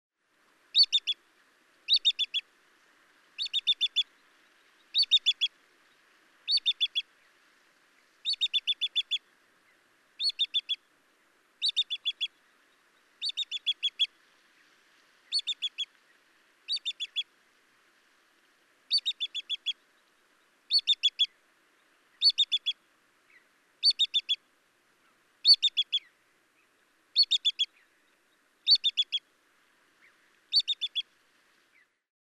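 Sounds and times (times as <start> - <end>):
Ibisbill Ibidorhyncha struthersii calling: 0.7 - 1.2, 1.9 - 2.4, 3.4 - 4.1, 4.9 - 5.5, 6.4 - 7.0, 8.2 - 9.2, 10.2 - 10.8, 11.6 - 12.4, 13.2 - 14.1, 15.3 - 15.9, 16.7 - 17.3, 18.9 - 19.8, 20.7 - 21.4, 22.2 - 24.4, 25.4 - 26.1, 27.1 - 27.8, 28.6 - 29.2, 30.0 - 31.1.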